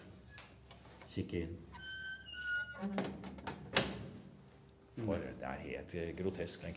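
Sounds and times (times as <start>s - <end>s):
speech: 1.2s - 1.8s, 2.8s - 3.6s, 5.0s - 6.7s
heavy prison cell door creaking: 1.7s - 4.1s.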